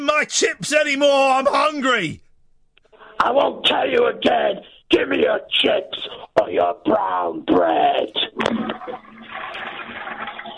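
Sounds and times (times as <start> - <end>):
speech: 0.2 - 2.2, 3.2 - 9.1
toilet flushing: 8.4 - 10.5.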